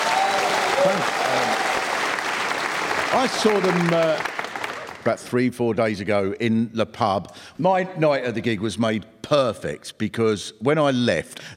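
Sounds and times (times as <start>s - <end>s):
whoops from the crowd: 0.0s - 2.0s
large audience applause: 0.0s - 5.1s
speech: 3.2s - 4.3s, 5.0s - 11.5s.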